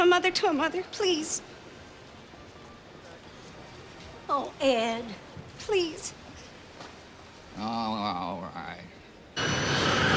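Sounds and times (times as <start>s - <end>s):
speech: 0.1s - 1.6s, 4.3s - 6.2s, 7.6s - 9.8s
airplane taking off into the sky: 9.4s - 10.1s.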